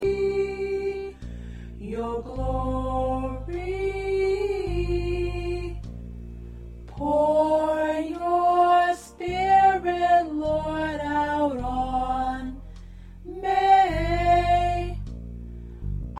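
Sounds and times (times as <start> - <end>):
soprano singing: 0.0 - 1.2, 1.8 - 5.9, 7.0 - 12.6, 13.2 - 15.0.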